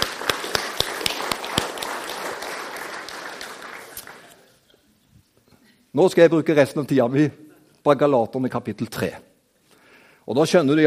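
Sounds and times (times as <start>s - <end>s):
audience applauding: 0.0s - 4.6s
speech: 6.0s - 9.3s, 10.3s - 10.8s.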